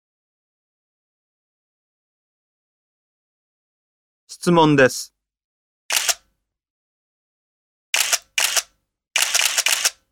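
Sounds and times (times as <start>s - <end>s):
speech: 4.3s - 5.1s
single-lens reflex camera shutter clicks: 5.9s - 6.2s, 8.0s - 10.0s.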